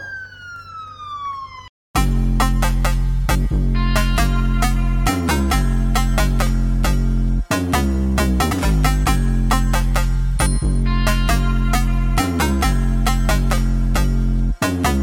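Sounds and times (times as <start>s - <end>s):
police siren wailing: 0.0s - 1.7s
loud music with heavy pounding bass beat: 2.0s - 15.0s.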